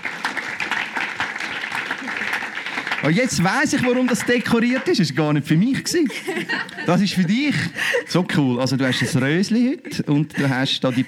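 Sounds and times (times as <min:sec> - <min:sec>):
audience applause: 0:00.0 - 0:05.3
speech: 0:03.0 - 0:11.0
laughter: 0:03.5 - 0:11.0.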